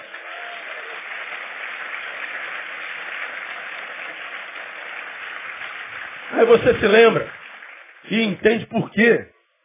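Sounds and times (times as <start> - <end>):
large crowd applauding: 0.0 - 9.2
speech: 6.4 - 7.3, 8.1 - 9.3.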